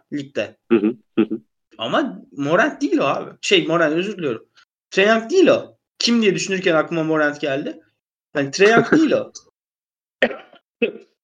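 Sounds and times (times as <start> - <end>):
speech: 0.1 - 7.8, 8.4 - 9.5, 10.2 - 11.1
ill person coughing harshly: 8.7 - 9.1, 10.2 - 10.6
laughter: 8.7 - 9.1.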